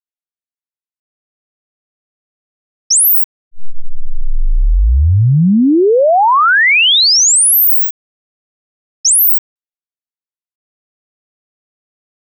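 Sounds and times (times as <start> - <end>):
sine sweep tone from 0 to 24000 Hz at 0 dBFS: 3.6 - 7.9.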